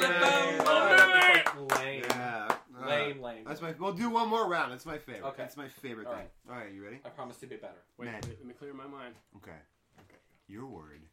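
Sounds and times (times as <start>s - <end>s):
voices cheering: 0.0s - 2.2s
people clapping: 0.0s - 2.8s
speech: 3.6s - 11.1s.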